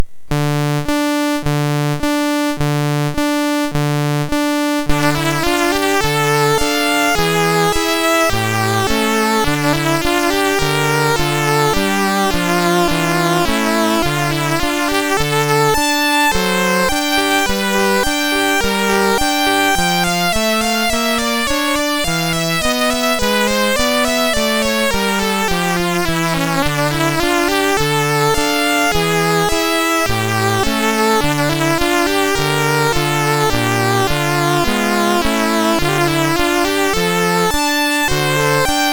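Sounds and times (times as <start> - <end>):
chiptune lament on a sound chip: 0.3 - 38.9.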